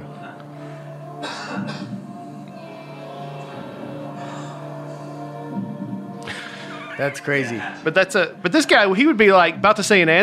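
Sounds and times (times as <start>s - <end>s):
audience member coughing in a crowd: 1.2s - 2.0s
laughter: 6.2s - 8.0s
speech: 7.0s - 10.2s.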